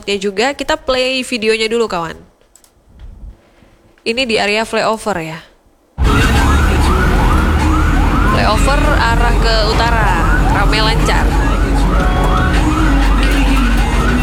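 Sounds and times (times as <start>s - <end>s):
speech: 0.0s - 2.3s, 4.0s - 5.5s, 8.4s - 11.4s
ambulance siren wailing in rising-and-falling sweeps: 6.0s - 14.2s
steady roar of heavy traffic: 6.0s - 14.2s.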